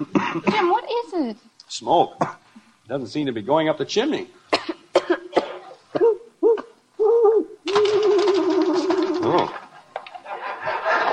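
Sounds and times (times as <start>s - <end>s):
speech: 0.0s - 4.6s
owl hooting: 6.0s - 9.4s
laughter: 7.8s - 11.1s.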